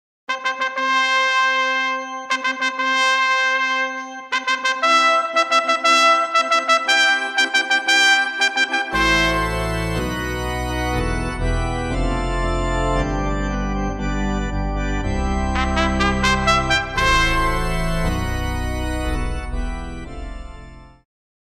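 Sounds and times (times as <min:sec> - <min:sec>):
trumpet playing a wedding march: 0:00.3 - 0:11.4, 0:15.3 - 0:19.6
organ playing a wedding march: 0:00.3 - 0:21.0.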